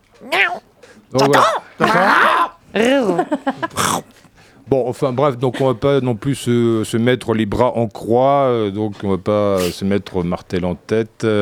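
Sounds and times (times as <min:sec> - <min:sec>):
person imitating a cat meowing: 0:00.2 - 0:00.6, 0:01.2 - 0:02.6
speech: 0:00.2 - 0:04.0, 0:04.7 - 0:11.3.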